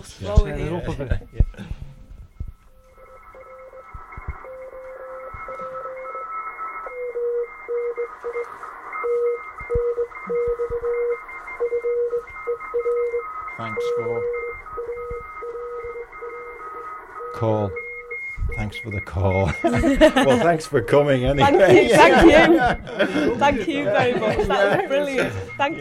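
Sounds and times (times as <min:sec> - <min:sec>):
speech: 0:00.0 - 0:01.7, 0:18.7 - 0:25.7
Morse code keyed as a steady mid-pitched tone: 0:00.2 - 0:25.7
laughter: 0:00.7 - 0:01.7, 0:19.4 - 0:20.7, 0:21.4 - 0:25.7
faint higher tone: 0:01.8 - 0:19.2.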